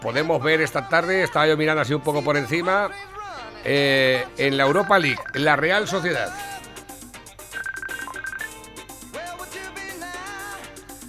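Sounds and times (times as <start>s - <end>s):
speech: 0.0s - 6.5s
WhatsApp video call ringtone: 4.8s - 6.0s, 7.4s - 8.7s.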